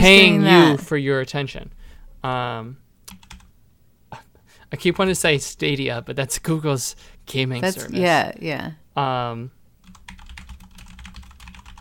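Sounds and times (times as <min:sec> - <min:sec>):
brief voiced sound: 0:00.0 - 0:00.9
speech: 0:00.0 - 0:03.3, 0:04.1 - 0:09.6
typing on a computer keyboard: 0:03.1 - 0:03.5, 0:09.8 - 0:11.7.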